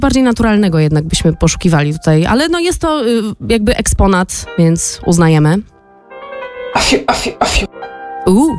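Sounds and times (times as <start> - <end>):
speech: 0.0 - 5.7, 6.8 - 8.5
forceful theatrical coughs: 6.8 - 7.7.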